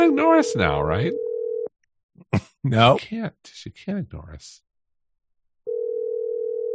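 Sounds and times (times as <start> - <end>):
speech: 0.0 - 1.2, 2.3 - 4.6
steady electronic phone ringing tone: 0.0 - 1.7, 5.7 - 6.7.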